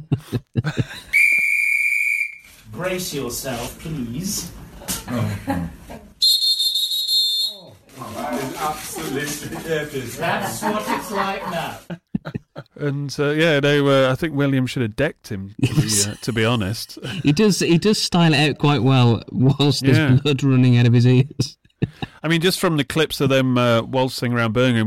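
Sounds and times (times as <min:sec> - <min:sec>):
laughter: 0:00.0 - 0:01.4, 0:04.4 - 0:06.2, 0:08.0 - 0:13.0, 0:15.6 - 0:17.6, 0:19.3 - 0:20.6, 0:21.4 - 0:22.2
speech: 0:00.1 - 0:01.1, 0:02.7 - 0:06.0, 0:08.0 - 0:21.6, 0:22.2 - 0:24.8
ship's steam whistle blasts: 0:01.2 - 0:02.5, 0:06.2 - 0:07.6.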